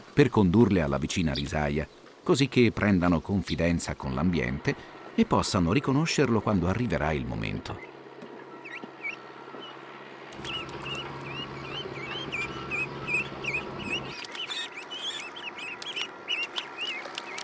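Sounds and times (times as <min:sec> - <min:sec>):
speech: 0:00.2 - 0:07.9
low rumbling hum: 0:07.2 - 0:17.0
young ducks peeping in a rice paddy: 0:07.4 - 0:17.4.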